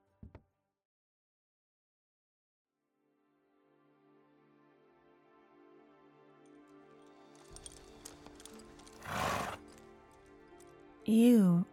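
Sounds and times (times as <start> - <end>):
horse hooves clip-clopping: 7.4 - 10.7
horse whinnying: 8.8 - 9.8
speech: 11.1 - 11.7.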